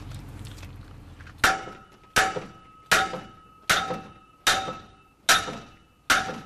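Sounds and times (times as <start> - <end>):
hammer knocking a metal shaft into a tube on a broken combine harvester: 1.4 - 6.4.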